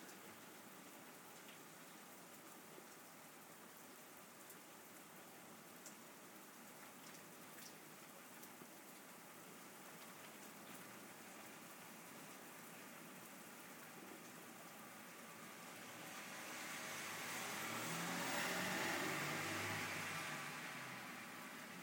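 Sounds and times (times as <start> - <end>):
steady rain falling: 0.0 - 21.8.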